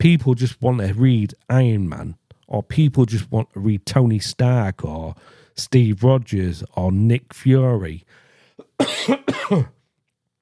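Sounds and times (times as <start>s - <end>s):
speech: 0.0s - 8.2s, 8.8s - 9.8s
person coughing: 8.6s - 9.8s.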